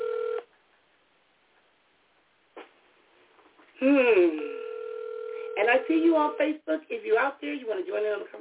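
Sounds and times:
steady electronic telephone tone: 0:00.0 - 0:00.4, 0:04.3 - 0:06.4
speech: 0:03.8 - 0:04.5, 0:05.6 - 0:08.3.

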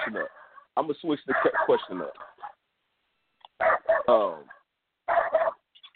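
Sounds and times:
small dog barking: 0:00.0 - 0:00.6, 0:01.3 - 0:02.6, 0:03.6 - 0:05.7
speech: 0:00.1 - 0:02.3, 0:04.1 - 0:04.6.

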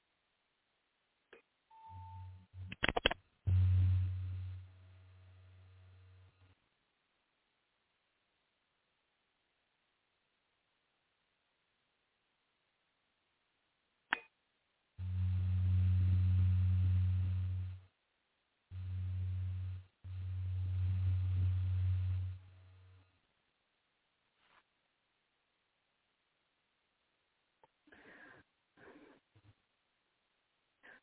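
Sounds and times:
clicks: 0:01.3 - 0:03.6
brief higher tone: 0:01.7 - 0:02.4
steady low hum: 0:02.0 - 0:06.6, 0:15.0 - 0:17.9, 0:18.7 - 0:23.2.

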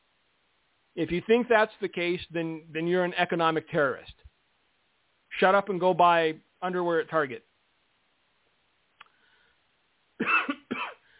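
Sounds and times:
speech: 0:01.0 - 0:04.2, 0:05.4 - 0:07.5
person coughing on a live microphone: 0:10.2 - 0:11.0.

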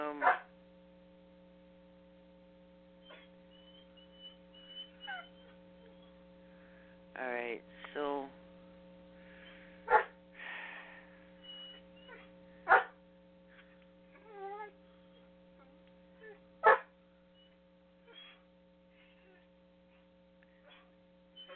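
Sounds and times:
steady electrical hum: 0:00.0 - 0:21.5
riled-up male dog barking sharply: 0:00.2 - 0:00.5, 0:09.8 - 0:10.2, 0:12.1 - 0:13.0, 0:16.6 - 0:16.9
male dog yipping and whimpering: 0:03.0 - 0:06.2, 0:11.4 - 0:12.8, 0:14.1 - 0:15.3, 0:17.4 - 0:19.4, 0:20.7 - 0:21.5
speech: 0:07.2 - 0:08.1.

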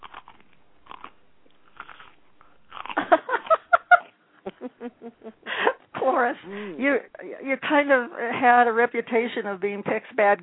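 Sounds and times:
person biting and chewing crunchy food: 0:00.0 - 0:04.6
speech: 0:06.5 - 0:10.4.

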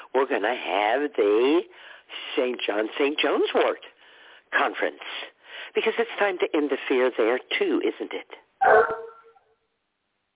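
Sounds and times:
speech: 0:00.2 - 0:03.9, 0:04.5 - 0:09.0
single sharp dog bark: 0:08.6 - 0:09.3.

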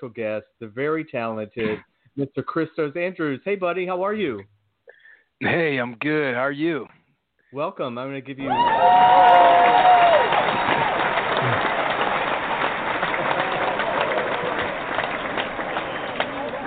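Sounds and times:
speech: 0:00.0 - 0:04.6, 0:05.4 - 0:10.3
applause from many hands: 0:08.5 - 0:16.6.

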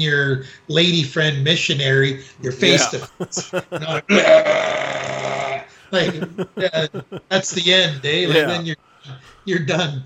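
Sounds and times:
speech: 0:00.0 - 0:05.0, 0:05.9 - 0:10.0
laughter: 0:02.6 - 0:04.3, 0:05.8 - 0:08.6
loud burp: 0:04.1 - 0:05.6.

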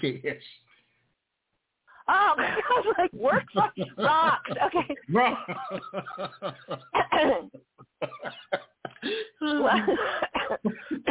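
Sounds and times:
speech: 0:00.0 - 0:00.6, 0:02.1 - 0:11.0
person laughing hard: 0:02.1 - 0:11.0
person snickering and chuckling: 0:02.4 - 0:11.0
person coughing from laughing: 0:06.5 - 0:09.3, 0:09.9 - 0:11.0.

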